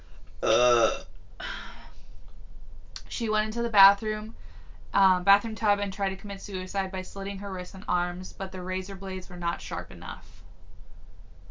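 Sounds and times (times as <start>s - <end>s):
burps: 0.4s - 1.2s
speech: 3.2s - 10.4s.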